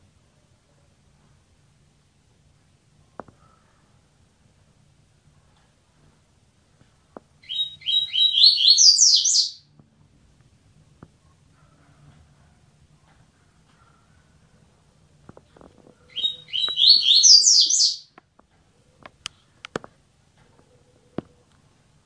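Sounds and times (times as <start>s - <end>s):
double-collared seedeater twittering song: 7.4s - 9.7s, 16.1s - 18.1s.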